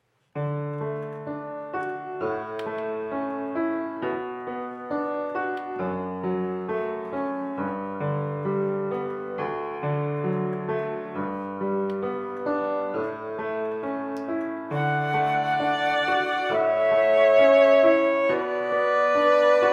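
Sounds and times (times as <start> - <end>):
piano: 0.0 - 19.7
flute: 14.7 - 19.7
violin: 14.7 - 19.7.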